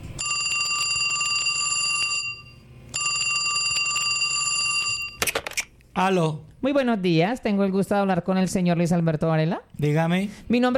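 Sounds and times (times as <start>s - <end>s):
telephone ringing: 0.2s - 5.3s
speech: 6.0s - 10.7s.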